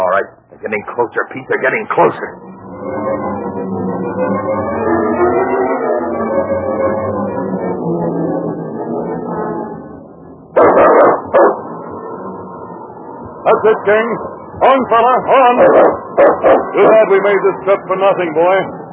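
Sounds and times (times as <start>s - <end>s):
wavering tonal drone: 0.0s - 18.9s
speech: 0.2s - 4.7s, 13.6s - 18.8s
dog barking: 10.6s - 11.6s, 15.6s - 16.9s.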